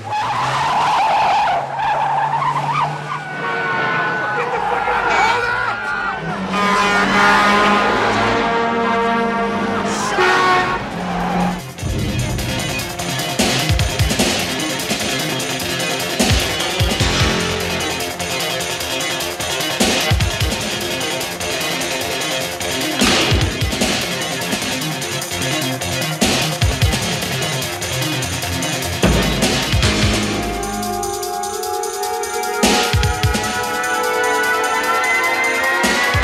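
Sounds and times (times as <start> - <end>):
car engines roaring in a film car chase: 0.0 - 36.2
tires screeching in a film car chase: 0.0 - 36.2
people shouting: 4.0 - 7.6, 9.8 - 11.8, 29.0 - 33.8
crashes and thuds in a film car chase: 29.0 - 30.9.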